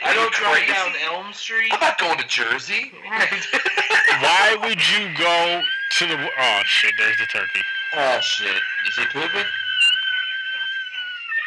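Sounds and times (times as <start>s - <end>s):
speech: 0.3s - 9.6s
laughter: 1.7s - 2.3s, 3.0s - 5.7s
sustained high-pitched shrill scream: 4.1s - 11.4s.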